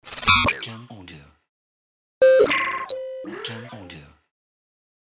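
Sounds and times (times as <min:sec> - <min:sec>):
glitch sounds: 0:00.0 - 0:00.6, 0:02.2 - 0:03.2.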